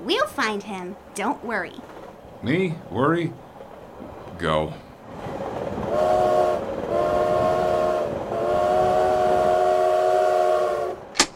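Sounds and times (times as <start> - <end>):
steady low rumble of a moving train: 0.0 - 11.3
speech: 0.1 - 3.5, 4.4 - 4.8
long sustained horn-like blasts: 5.9 - 11.1
sharp click: 11.2 - 11.3.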